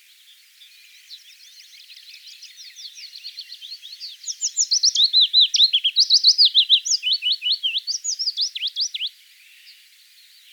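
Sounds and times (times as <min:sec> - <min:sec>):
willow warbler song of high slurred whistles: 0:00.0 - 0:10.5.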